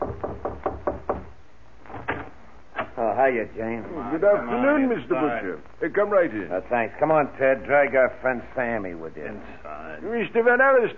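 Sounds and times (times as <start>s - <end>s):
knocking at a door: 0.0s - 1.4s
speech: 3.2s - 10.9s.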